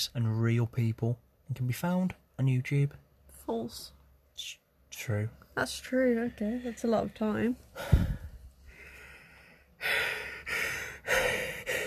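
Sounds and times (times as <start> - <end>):
speech: 0.0 - 8.2
heavy gasping breaths: 6.5 - 11.8.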